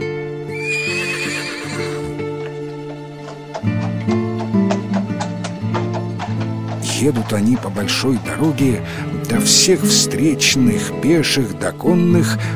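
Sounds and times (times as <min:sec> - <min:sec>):
old horse whinnying: 0:00.4 - 0:07.3
horse hooves clip-clopping on a road: 0:00.5 - 0:12.5
horse-drawn cart rumbling along a road: 0:02.0 - 0:10.6
speech: 0:07.0 - 0:12.5.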